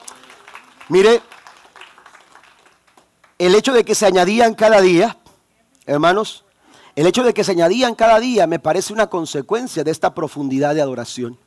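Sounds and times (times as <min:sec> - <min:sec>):
audience applauding during a sermon: 0:00.0 - 0:03.4
speech: 0:00.9 - 0:01.3, 0:03.4 - 0:05.2, 0:05.9 - 0:06.4, 0:07.0 - 0:11.4.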